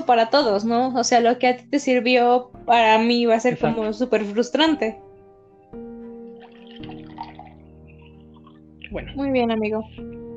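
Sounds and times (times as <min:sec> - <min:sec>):
speech: 0:00.0 - 0:05.0, 0:08.9 - 0:10.2
water pouring into a glass: 0:06.2 - 0:08.8.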